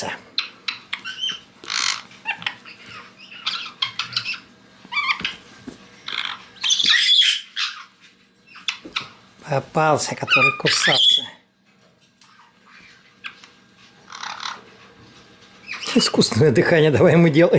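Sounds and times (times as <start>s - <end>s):
speech: 0.0s - 0.2s, 9.5s - 11.4s, 16.0s - 17.5s
White-bellied caique chick calling in rapid harsh squawks and rasping chirps: 0.0s - 9.2s, 10.1s - 11.4s, 12.2s - 14.8s, 15.6s - 16.2s.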